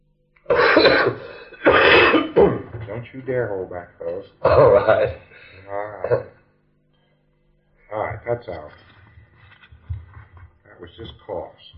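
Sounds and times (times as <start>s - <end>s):
harsh coughing: 0.5s - 2.8s, 4.4s - 6.4s
speech: 0.8s - 1.3s, 2.9s - 6.4s, 7.9s - 8.8s, 10.8s - 11.7s
rough breath: 1.2s - 2.1s, 5.2s - 5.7s.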